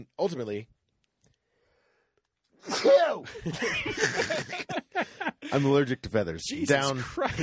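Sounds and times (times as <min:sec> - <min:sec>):
speech: 0:00.0 - 0:00.8, 0:02.6 - 0:07.4
person breathing: 0:01.4 - 0:02.2
human sneeze: 0:02.6 - 0:03.2
laughter: 0:03.2 - 0:05.9, 0:06.7 - 0:07.4.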